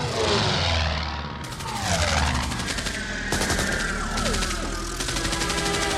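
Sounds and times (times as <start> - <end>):
roaring engine drone: 0.0 - 5.9
rapid gunfire in a film battle scene: 1.4 - 5.9.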